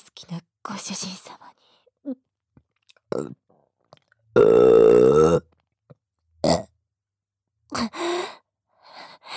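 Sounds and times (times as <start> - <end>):
speech: 0.2 - 2.2, 3.2 - 3.4
burping: 3.1 - 3.4, 4.4 - 5.5, 6.4 - 6.7.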